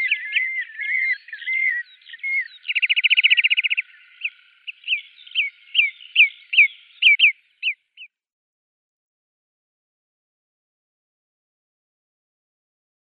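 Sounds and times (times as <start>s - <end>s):
marsh sandpiper display trill and whistled notes: 0.0s - 8.1s.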